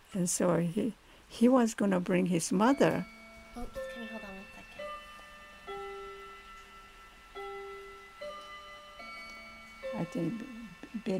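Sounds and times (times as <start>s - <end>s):
speech: 0.1s - 4.3s, 10.1s - 11.1s
clock chiming bell-like notes: 2.6s - 11.1s.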